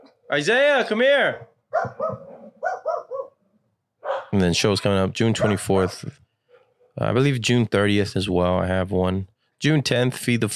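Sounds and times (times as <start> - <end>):
speech: 0.3 - 2.2, 4.4 - 6.2, 7.0 - 10.5
dogs barking: 1.3 - 3.4, 4.0 - 4.4, 5.3 - 7.0.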